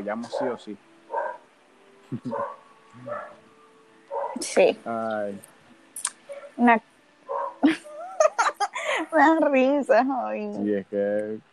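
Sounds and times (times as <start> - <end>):
faint low vocal sounds: 0.0 - 0.8, 2.1 - 3.4, 4.4 - 5.4, 10.5 - 11.5
speech: 0.0 - 0.9, 2.1 - 3.4, 4.4 - 6.9, 9.1 - 11.5
dog barking: 0.1 - 1.4, 2.2 - 3.4, 4.1 - 4.4, 7.3 - 7.6
laughter: 2.1 - 2.4, 7.6 - 9.4, 10.6 - 11.4.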